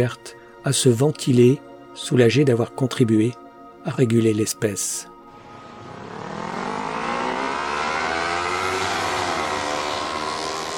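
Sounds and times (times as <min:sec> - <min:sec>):
speech: 0:00.0 - 0:05.1
motorcycle engine revving and roaring through the gears: 0:05.4 - 0:10.7.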